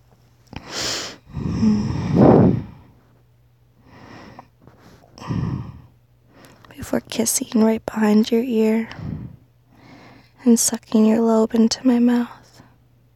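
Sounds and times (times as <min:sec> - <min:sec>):
person sighing contentedly: 0:00.6 - 0:02.8, 0:05.2 - 0:05.9
soft breathing close to the ear: 0:00.6 - 0:03.1, 0:03.8 - 0:06.8, 0:08.8 - 0:10.4
speech: 0:06.9 - 0:09.1, 0:10.4 - 0:12.4.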